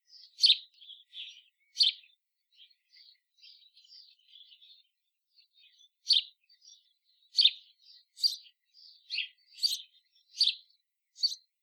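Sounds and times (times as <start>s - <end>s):
faint bird chatter: 0.0s - 11.6s
house sparrow cheeping: 0.1s - 2.1s, 5.7s - 11.5s.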